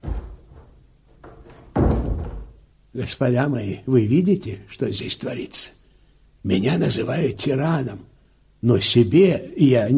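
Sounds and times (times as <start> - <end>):
doors being shut with heavy dull thuds: 0.0 - 2.7
speech: 3.0 - 5.8, 6.4 - 9.9.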